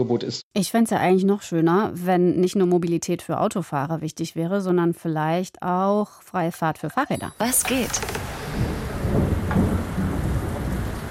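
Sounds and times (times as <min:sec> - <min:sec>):
speech: 0:00.0 - 0:09.7
rain on hard ground in a courtyard: 0:07.5 - 0:11.0
rumble of thunder: 0:07.8 - 0:11.0.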